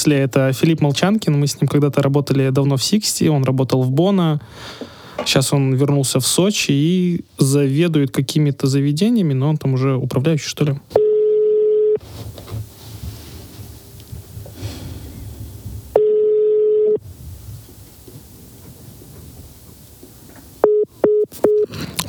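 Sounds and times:
speech: 0:00.0 - 0:11.0
ringback tone of a phone call waiting to be answered: 0:11.0 - 0:12.0, 0:16.0 - 0:17.0, 0:20.6 - 0:21.7.

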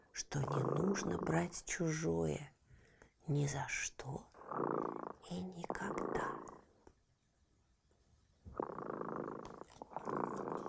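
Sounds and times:
cat purring: 0:00.0 - 0:02.1, 0:03.7 - 0:07.0, 0:08.4 - 0:10.6
speech: 0:00.2 - 0:02.6, 0:03.2 - 0:04.6, 0:05.2 - 0:06.4.

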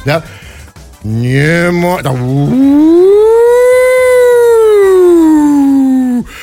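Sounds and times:
speech: 0:00.0 - 0:00.4, 0:01.0 - 0:03.2
civil defense loudspeaker siren wailing during a morning test: 0:01.4 - 0:05.9.

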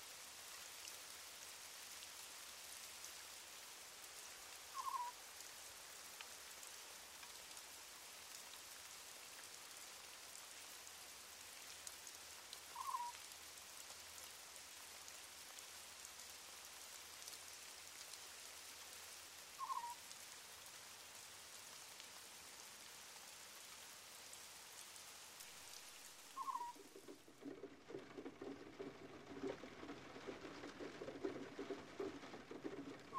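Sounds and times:
steady rain falling outdoors: 0:00.0 - 0:33.1
short bird-like calls: 0:04.7 - 0:05.2, 0:12.7 - 0:13.2, 0:19.6 - 0:20.0, 0:26.3 - 0:27.2.

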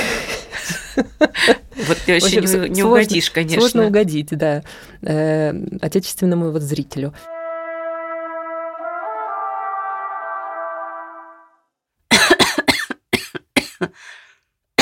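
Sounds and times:
speech: 0:01.2 - 0:07.3, 0:13.8 - 0:14.2
woman coughing in a harsh rapid fit: 0:12.1 - 0:14.0.

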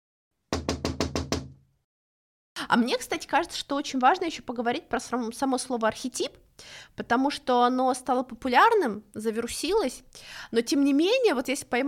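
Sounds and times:
sharp knocking: 0:00.6 - 0:01.6
speech: 0:02.6 - 0:11.8.

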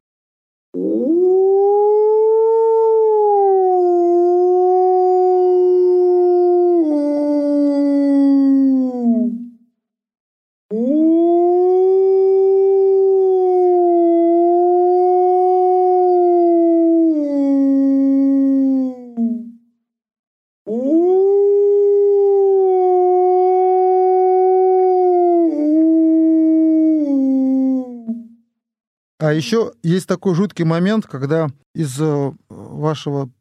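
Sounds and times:
speech: 0:00.7 - 0:01.4, 0:29.3 - 0:33.3
human voice imitating a wolf howl into a frame drum membrane: 0:00.8 - 0:09.4, 0:10.7 - 0:19.4, 0:20.7 - 0:28.1.

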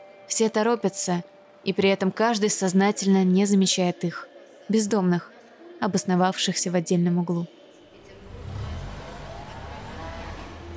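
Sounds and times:
speech: 0:00.3 - 0:07.6
white van engine rumbling, approaching, stopping and idling: 0:08.0 - 0:10.7.

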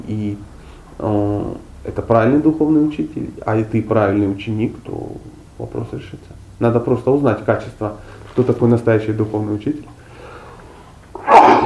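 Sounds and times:
speech: 0:00.0 - 0:09.9
intake of breath: 0:10.0 - 0:11.0
sneeze: 0:11.2 - 0:11.6.

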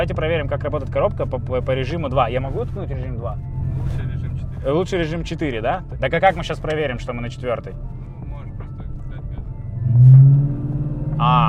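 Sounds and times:
car engine revving loudly: 0:00.0 - 0:04.9, 0:09.4 - 0:11.4
speech: 0:00.0 - 0:08.0, 0:10.0 - 0:10.4, 0:11.2 - 0:11.4.

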